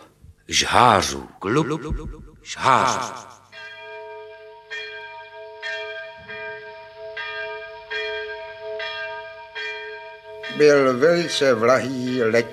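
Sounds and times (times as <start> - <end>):
speech: 0.5 - 3.4, 10.6 - 12.5
church bell tolling with a rich lingering hum: 2.5 - 12.5.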